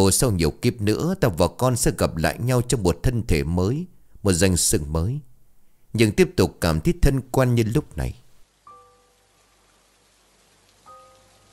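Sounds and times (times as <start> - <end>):
speech: 0.0 - 5.3, 5.9 - 8.2
rain falling outside on a porch: 8.4 - 11.5
brief tonal pings: 8.7 - 9.2.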